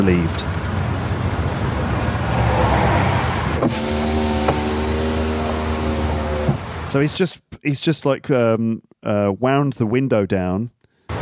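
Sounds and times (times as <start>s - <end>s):
speech: 0.0s - 0.6s, 3.6s - 3.8s, 6.9s - 10.8s
police car sustained tonal engine hum: 0.0s - 6.9s
police car road rumble: 0.0s - 7.2s.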